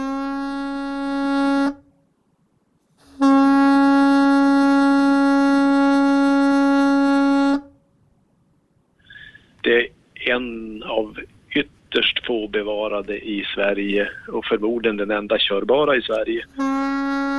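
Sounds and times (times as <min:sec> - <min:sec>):
deep foghorn blasts from a harbour: 0:00.0 - 0:02.0, 0:03.0 - 0:07.8, 0:16.4 - 0:17.3
speech: 0:09.7 - 0:16.7.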